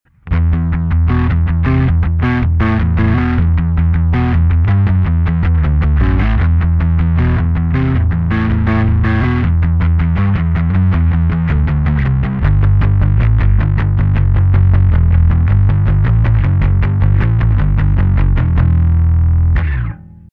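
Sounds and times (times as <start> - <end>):
bass heavy lo mix: 0.1 - 20.3.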